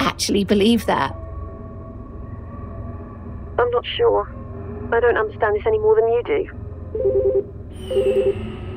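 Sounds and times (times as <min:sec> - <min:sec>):
speech: 0:00.2 - 0:01.2, 0:03.6 - 0:08.6
electronic telephone dialing tones from a phone: 0:06.9 - 0:08.5.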